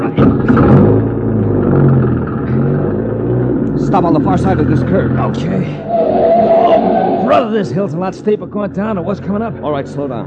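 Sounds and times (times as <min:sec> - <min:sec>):
car engine starting and revving on a roadway: 0:00.0 - 0:07.8
speech: 0:03.9 - 0:05.9, 0:07.3 - 0:10.2.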